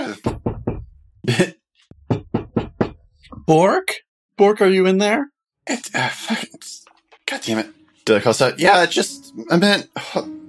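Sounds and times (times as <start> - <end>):
knocking on a door: 0.2 - 0.9, 2.0 - 3.0
speech: 1.3 - 2.2, 3.5 - 10.4.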